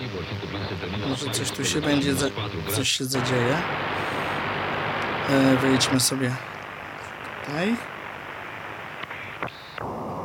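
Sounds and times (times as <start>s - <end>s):
radio static hiss while tuning: 0.0s - 10.2s
speech: 0.7s - 4.6s, 5.3s - 6.6s, 7.5s - 7.9s
radio clicks: 3.2s - 9.9s.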